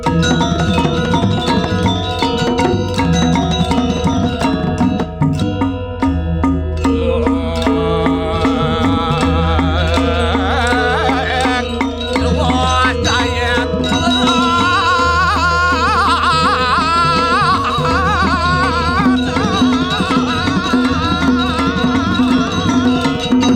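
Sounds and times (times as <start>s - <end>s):
gamelan: 0.0s - 23.5s
laughter: 8.2s - 23.4s.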